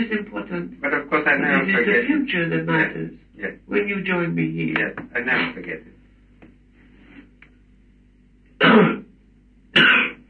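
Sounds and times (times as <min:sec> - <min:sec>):
speech: 0:00.0 - 0:05.9, 0:08.6 - 0:09.0
man clearing throat: 0:08.6 - 0:09.1, 0:09.8 - 0:10.2
man with a lingering bad cough coughing: 0:08.6 - 0:09.1, 0:09.8 - 0:10.2.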